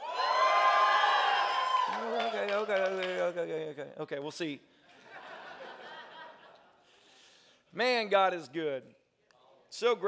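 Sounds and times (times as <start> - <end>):
audience at a church service shouting and cheering: 0.0 - 2.8
speech: 2.0 - 4.8, 7.7 - 9.0, 9.7 - 10.0
laughter: 4.9 - 6.8.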